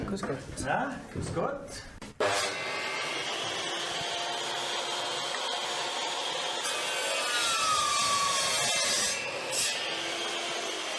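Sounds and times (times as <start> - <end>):
speech: 0.2 - 2.0
school class sawing and working wood in a workshop room: 2.2 - 10.9.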